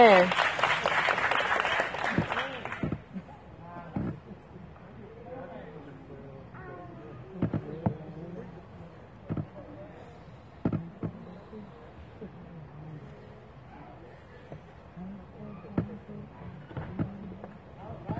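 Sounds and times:
audience applause: 0:00.0 - 0:03.1
scattered noise: 0:00.0 - 0:18.1.

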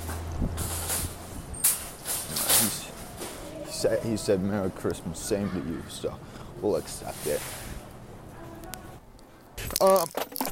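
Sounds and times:
speech: 0:00.4 - 0:00.8, 0:03.8 - 0:07.6, 0:09.8 - 0:10.2
keys dropping on a hard surface: 0:00.8 - 0:02.9.

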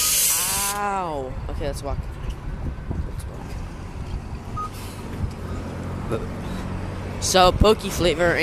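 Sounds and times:
busy downtown street traffic rumble: 0:00.0 - 0:08.4
heavy vehicles idling and passing: 0:00.0 - 0:08.4
speech: 0:00.8 - 0:02.2, 0:06.1 - 0:06.6, 0:07.2 - 0:08.4
short tonal beep: 0:04.6 - 0:04.8.

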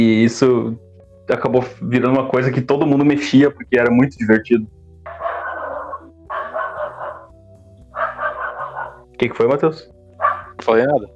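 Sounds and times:
speech: 0:00.0 - 0:04.8, 0:09.2 - 0:10.0, 0:10.6 - 0:11.1
dog barking: 0:05.1 - 0:09.1, 0:10.2 - 0:10.8.

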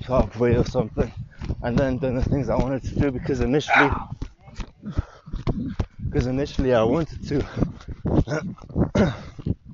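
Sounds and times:
speech: 0:00.1 - 0:05.0, 0:06.1 - 0:09.6
dog barking and whining: 0:03.7 - 0:04.1.

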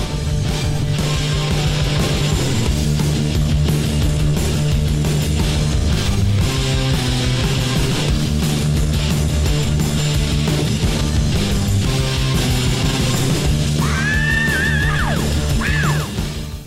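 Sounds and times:
heavy metal recording with distorted guitars and pounding drums: 0:00.0 - 0:16.6
high wailing screamed vocals: 0:13.7 - 0:16.2.

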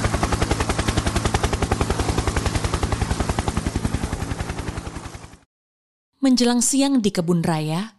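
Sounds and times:
helicopter engine roar: 0:00.0 - 0:05.4
helicopter rotor chopping: 0:00.0 - 0:05.5
speech: 0:06.2 - 0:07.9.

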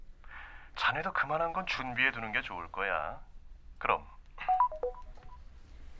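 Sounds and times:
speech: 0:00.9 - 0:04.1
short electronic phone beeps as a call is hung up: 0:04.5 - 0:05.4
soft click of a phone call being hung up: 0:04.5 - 0:05.4.

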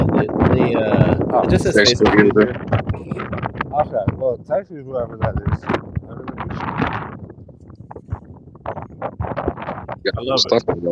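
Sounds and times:
gusty wind buffeting the microphone: 0:00.0 - 0:10.9
speech: 0:00.2 - 0:03.2, 0:03.8 - 0:05.9, 0:10.0 - 0:10.9.

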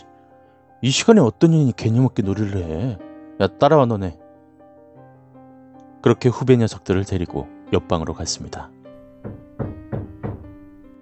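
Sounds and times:
speech: 0:00.8 - 0:04.2, 0:06.0 - 0:09.4
firm knocking on a wooden door: 0:09.0 - 0:10.9.

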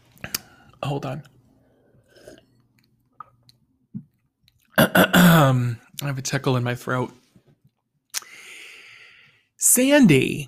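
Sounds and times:
speech: 0:00.9 - 0:01.4, 0:05.4 - 0:07.2, 0:09.8 - 0:10.4
slurping iced coffee: 0:02.0 - 0:02.6.

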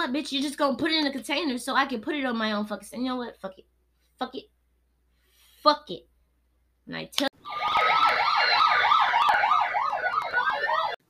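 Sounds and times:
speech: 0:00.0 - 0:04.5, 0:05.6 - 0:06.1, 0:06.9 - 0:08.5
emergency siren in fast yelp pattern: 0:07.4 - 0:11.0.

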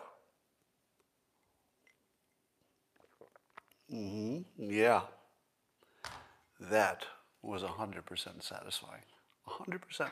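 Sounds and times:
sipping from a drink: 0:01.4 - 0:03.9
speech: 0:03.9 - 0:05.2, 0:06.6 - 0:10.1.

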